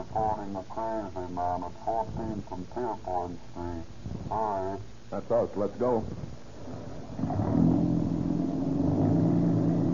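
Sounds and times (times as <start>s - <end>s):
speech: 0.2s - 7.3s
old car engine running and revving: 6.6s - 9.9s.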